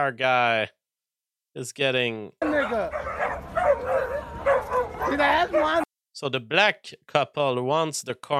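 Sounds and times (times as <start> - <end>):
speech: 0.0 - 0.8, 1.6 - 4.1, 5.1 - 8.3
several dogs barking and yipping: 2.4 - 5.9.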